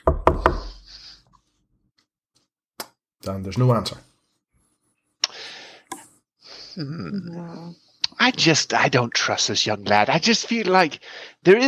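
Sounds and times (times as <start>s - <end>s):
knocking on a door: 0.0s - 0.8s
speech: 3.3s - 4.1s, 6.8s - 11.6s.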